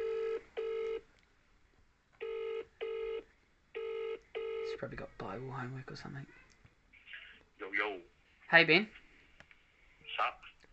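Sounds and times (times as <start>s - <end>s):
outgoing phone call ringing tone in double bursts: 0.0s - 1.0s, 2.2s - 4.8s
speech: 4.8s - 6.4s, 8.5s - 9.0s.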